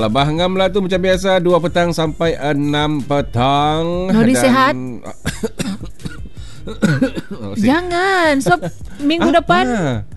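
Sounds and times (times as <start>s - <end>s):
speech: 0.0s - 5.6s, 6.6s - 10.1s
run of short rough throaty coughs: 5.2s - 7.7s.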